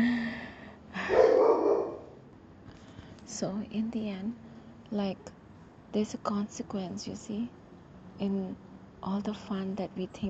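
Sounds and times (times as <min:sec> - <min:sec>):
dog bark trailing into a whine: 0:01.1 - 0:02.1
speech: 0:03.4 - 0:07.6, 0:08.2 - 0:10.2.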